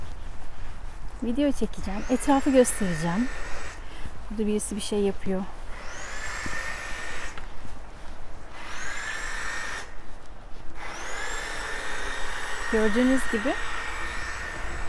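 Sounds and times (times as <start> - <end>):
outdoor noise: 0.0 - 14.8
speech: 1.2 - 3.5, 4.3 - 5.6, 12.7 - 13.7
electric saw cutting trees: 1.7 - 3.8, 5.7 - 7.5, 8.5 - 10.0, 10.8 - 14.8.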